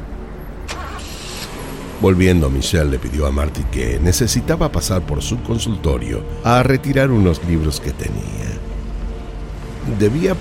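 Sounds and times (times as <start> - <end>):
car engine rumbling in a restaurant parking lot: 0.0 - 10.3
speech: 2.0 - 8.6, 9.8 - 10.3.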